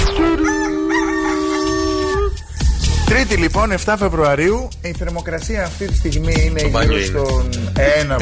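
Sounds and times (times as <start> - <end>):
rooster crowing: 0.2 - 3.0
speech: 3.3 - 8.2.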